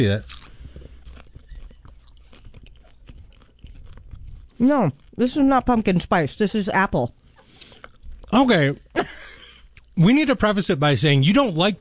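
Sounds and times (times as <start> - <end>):
speech: 0.0 - 0.4, 4.6 - 7.2, 8.3 - 9.2, 10.0 - 11.7
wet chewing and crunching of organic popcorn: 0.0 - 8.6, 9.6 - 10.0.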